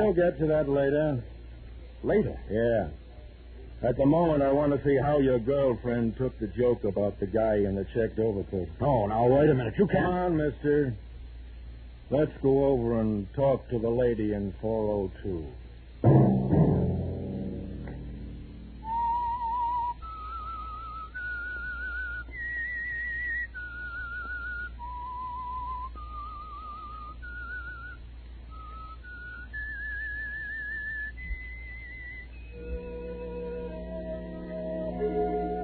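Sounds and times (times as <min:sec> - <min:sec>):
speech: 0:00.1 - 0:01.4, 0:02.0 - 0:03.0, 0:03.8 - 0:11.1, 0:12.1 - 0:16.6
lone person whistling a slow wandering melody: 0:18.8 - 0:35.6
soft orchestral music: 0:32.6 - 0:35.6.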